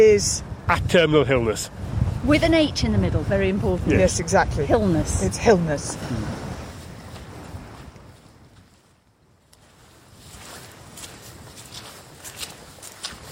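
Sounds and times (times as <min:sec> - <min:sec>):
speech: 0:00.0 - 0:06.4
gusty wind rumbling and hissing below a hill summit: 0:00.0 - 0:13.3
footsteps crunching on an outdoor hill path: 0:06.6 - 0:13.3.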